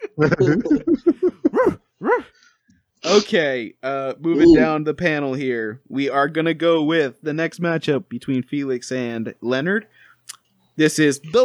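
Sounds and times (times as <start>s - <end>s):
laughter: 0.0s - 2.2s, 3.1s - 5.2s
speech: 0.2s - 1.8s, 3.0s - 10.0s, 10.8s - 11.4s
person imitating dog barks: 1.5s - 2.3s, 3.0s - 3.4s, 4.3s - 4.7s.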